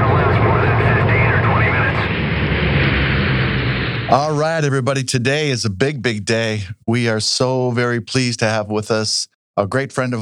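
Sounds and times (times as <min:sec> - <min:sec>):
faint voices: 0:00.0 - 0:02.2
airplane in flight through turbulence roaring: 0:00.0 - 0:04.5
speech: 0:04.1 - 0:10.2.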